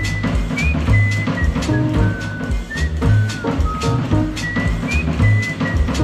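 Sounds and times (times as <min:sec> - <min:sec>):
person whistling a simple thin melody: 0:00.0 - 0:06.0.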